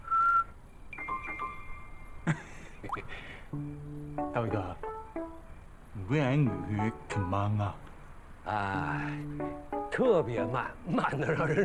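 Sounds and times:
person whistling toward the neighboring yard: 0.0 - 0.6
faint tonal chirps: 0.0 - 5.8
speech: 4.4 - 4.8, 6.1 - 7.8, 8.4 - 11.6
laughter: 10.9 - 11.6.

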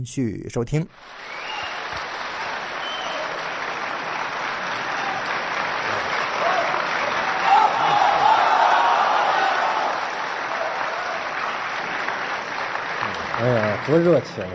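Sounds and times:
speech: 0.0 - 2.2, 13.4 - 14.5
large audience applauding at a live traditional Chinese comic performance: 1.0 - 14.5.

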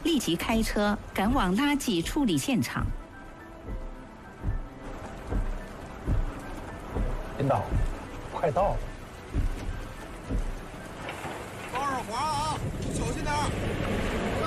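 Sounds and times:
sudden torrential downpour of rain: 0.0 - 14.4
dull low thuds: 2.8 - 11.6.

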